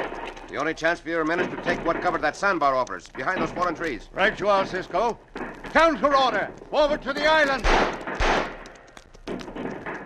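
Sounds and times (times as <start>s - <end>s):
speech: 0.5s - 8.0s
gunfire in a western shootout on a river sandbar: 7.6s - 8.9s.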